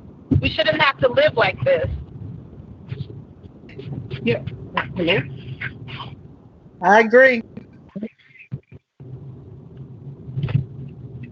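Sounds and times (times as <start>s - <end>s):
car interior rumble while driving: 0.0s - 11.2s
speech: 0.4s - 2.0s, 4.2s - 5.8s, 6.8s - 8.1s
voice fragments: 0.4s - 2.0s, 2.9s - 6.2s, 6.8s - 8.8s.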